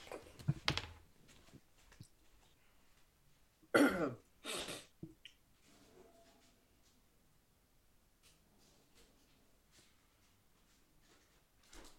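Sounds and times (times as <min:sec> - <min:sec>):
harsh coughs: 0:03.7 - 0:04.9
throat clearing: 0:03.7 - 0:04.9.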